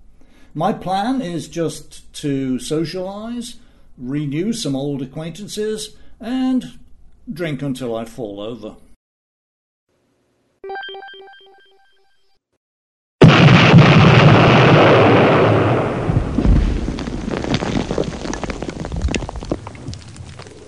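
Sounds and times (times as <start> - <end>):
speech: 0.5 - 8.8
short ringing bell-like tone: 10.6 - 12.4
explosion sound effect: 13.2 - 18.5.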